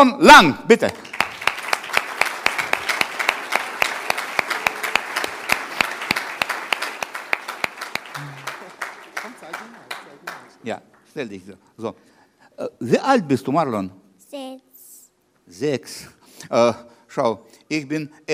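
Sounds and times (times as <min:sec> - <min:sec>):
speech: 0:00.0 - 0:01.1, 0:10.6 - 0:14.7, 0:15.5 - 0:18.3
live crowd applause: 0:00.8 - 0:11.0.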